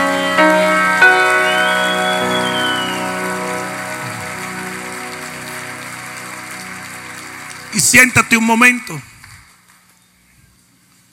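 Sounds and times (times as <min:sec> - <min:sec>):
sustained keyboard chords: 0:00.0 - 0:08.6
crowd applauding loudly: 0:00.0 - 0:10.0
speech: 0:07.9 - 0:09.1.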